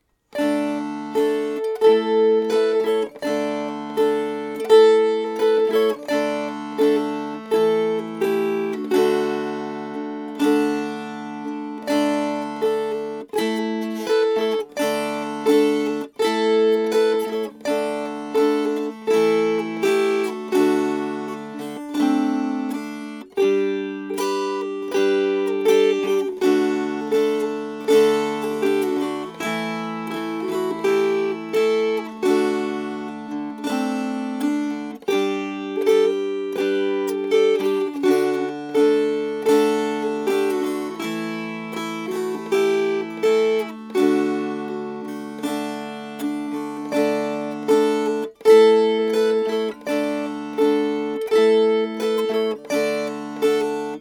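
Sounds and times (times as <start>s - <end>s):
strummed processional tune: 0.0s - 53.9s.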